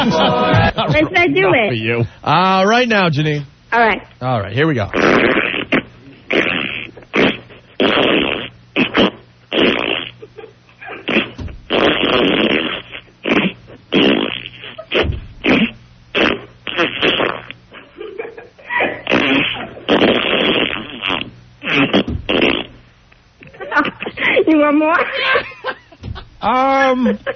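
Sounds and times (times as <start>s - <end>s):
laughter: 0.0s - 1.6s, 17.8s - 19.9s, 23.4s - 27.3s
speech: 0.0s - 5.5s
queefing: 4.8s - 27.3s.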